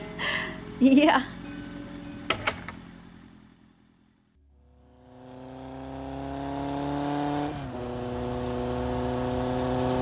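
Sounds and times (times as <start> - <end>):
speech: 0.8 - 1.4
motorcycle engine revving then slowing down: 4.4 - 10.0.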